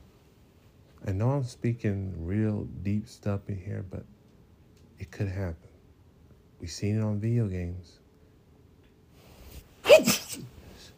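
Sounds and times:
speech: 1.1 - 4.2, 5.0 - 5.7, 6.6 - 8.0
person sneezing: 9.8 - 10.9.

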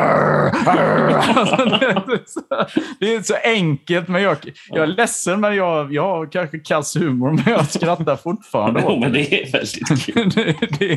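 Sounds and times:
Labrador dog growling: 0.0 - 1.4
laughter: 0.5 - 3.3, 7.0 - 10.9
speech: 0.7 - 10.9.

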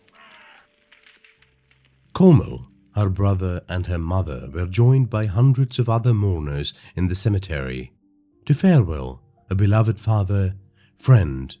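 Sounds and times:
crow giving a loud rasping caw: 0.0 - 0.8
burning funeral pyre crackling and popping: 0.0 - 4.6
speech: 2.2 - 11.5.

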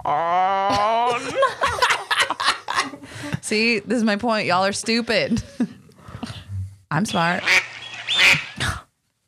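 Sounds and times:
laughter: 0.7 - 3.1
speech: 3.5 - 5.6, 6.9 - 7.6
duck quacking: 7.1 - 8.6.

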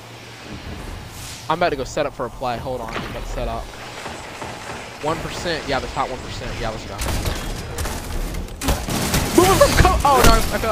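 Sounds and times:
speech: 0.5 - 3.8, 5.0 - 7.4, 9.5 - 10.6
video game gunfire: 3.7 - 10.6.

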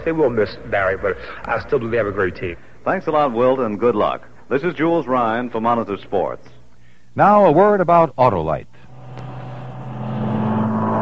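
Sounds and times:
speech: 0.0 - 6.6, 7.2 - 8.7
experimental car engine running: 8.9 - 11.0.

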